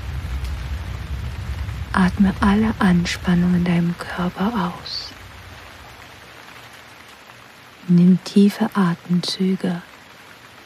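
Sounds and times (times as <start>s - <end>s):
steady dense rain falling: 0.0s - 10.6s
speech: 2.0s - 5.1s, 7.9s - 9.9s.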